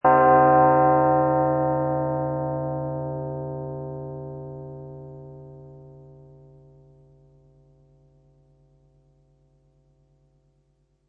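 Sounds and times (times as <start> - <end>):
solemn desolate church bell or death bell with reverb: 0.0 - 10.9.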